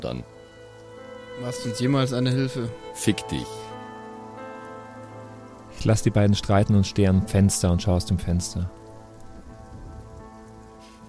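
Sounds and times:
speech: 0.0 - 0.4, 1.4 - 3.7, 5.8 - 8.8
steady rain pattering on a hard surface outside: 0.0 - 11.0.

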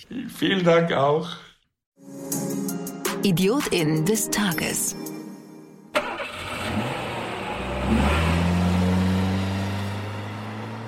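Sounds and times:
speech: 0.0 - 1.5, 3.2 - 5.1, 7.9 - 8.3
sports car engine starting and revving hard: 6.0 - 10.8.

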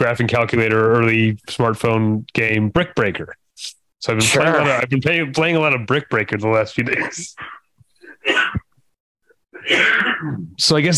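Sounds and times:
speech: 0.0 - 7.6, 8.2 - 8.6, 9.6 - 10.9
person coughing: 7.0 - 8.7, 9.5 - 10.6.

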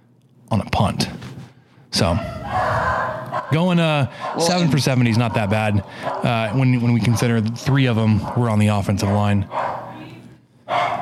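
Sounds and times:
speech: 0.5 - 1.2, 2.0 - 2.8, 3.4 - 9.7
dogs barking: 2.0 - 11.0.

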